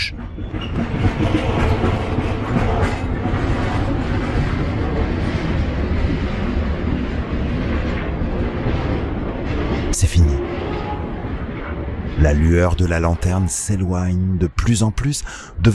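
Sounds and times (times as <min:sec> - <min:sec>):
rhythmic clickety-clack of train wheels: 0:00.0 - 0:09.9
long train of many wagons rolling on rails: 0:00.0 - 0:15.7
speech: 0:12.2 - 0:15.7.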